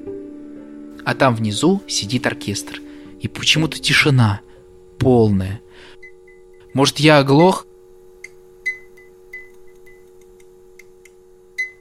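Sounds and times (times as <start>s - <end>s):
steady low electrical hum: 0.0s - 11.7s
speech: 1.0s - 6.0s, 6.8s - 7.7s
light bulb crackling in a small hall: 5.9s - 11.7s.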